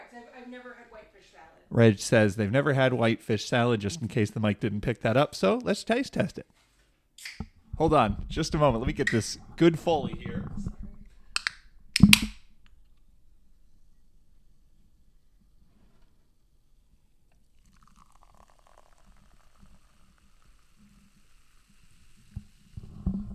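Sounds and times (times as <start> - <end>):
speech: 0.2 - 6.6, 7.3 - 10.8
can of cream soda cracking open with a hiss: 7.2 - 7.4, 18.5 - 22.9
cream soda pouring and faintly fizzing: 17.4 - 23.3.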